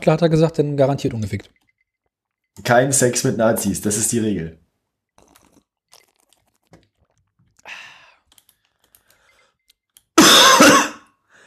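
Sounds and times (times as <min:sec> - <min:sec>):
speech: 0:00.0 - 0:01.6, 0:02.6 - 0:04.6
person coughing: 0:10.2 - 0:11.2.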